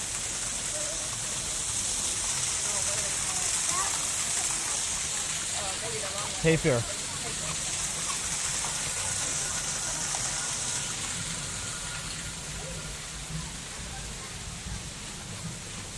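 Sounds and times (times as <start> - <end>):
waterfall rushing water: 0.0 - 15.9
speech: 6.4 - 7.0.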